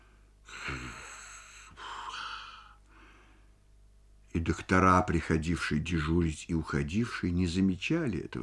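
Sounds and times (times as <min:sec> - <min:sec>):
man snoring while asleep: 0:00.5 - 0:02.8
speech: 0:04.4 - 0:08.4.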